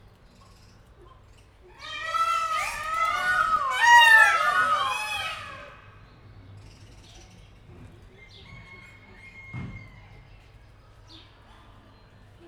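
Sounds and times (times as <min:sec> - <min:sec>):
distant peacock at a zoo: 0:01.8 - 0:06.0.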